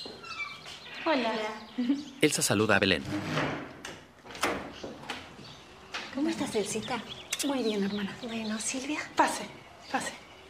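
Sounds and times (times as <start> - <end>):
speech: 1.0 - 3.7, 6.2 - 10.2
house door scraping as it swings open: 2.9 - 4.7.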